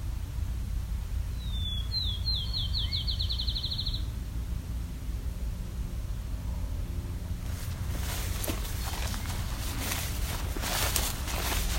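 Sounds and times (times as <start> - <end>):
airplanes circling overhead with low engine rumble: 0.0 - 11.7
field sparrow song in Westover, Ontario: 1.3 - 4.1.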